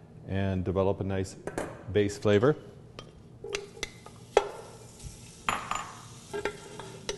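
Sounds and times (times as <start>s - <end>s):
speech: 0.3s - 2.7s
bacon sizzling in olive oil in a pot: 3.0s - 7.1s
clinks and scrapes of stirring: 3.0s - 7.1s.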